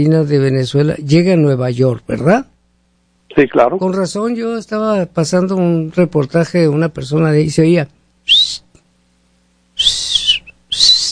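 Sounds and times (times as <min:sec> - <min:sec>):
speech: 0:00.0 - 0:02.5, 0:03.3 - 0:08.6
person whistling in short shrill bursts: 0:08.3 - 0:08.6, 0:09.8 - 0:11.1.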